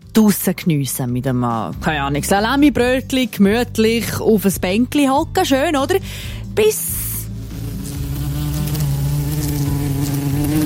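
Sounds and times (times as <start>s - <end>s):
speech: 0.2s - 7.0s
wasp buzzing while flying around: 6.8s - 10.6s.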